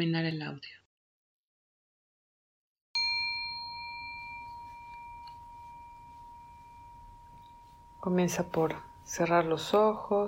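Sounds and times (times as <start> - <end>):
speech: 0.0 - 0.8, 8.0 - 10.2
meditation gong struck and ringing: 3.0 - 10.0.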